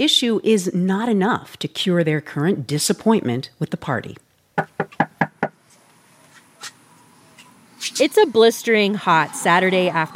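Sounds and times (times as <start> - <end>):
speech: 0.0 - 4.8, 8.0 - 10.1
firm knocks on a front door: 4.6 - 5.6.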